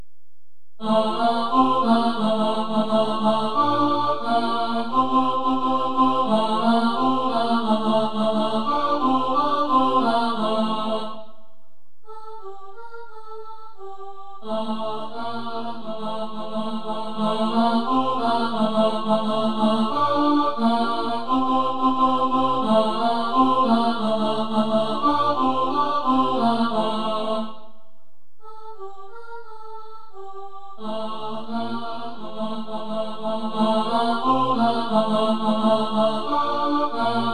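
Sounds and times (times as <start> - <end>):
tenor singing: 0.8 - 11.2, 12.1 - 27.6, 28.4 - 37.3.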